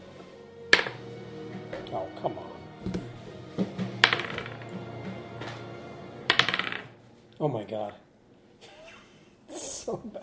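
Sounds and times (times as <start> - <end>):
dice clattering across a hard table: 0.8 - 1.0, 4.0 - 4.6, 6.3 - 6.9
speech: 1.7 - 3.7, 7.4 - 8.1, 9.9 - 10.2.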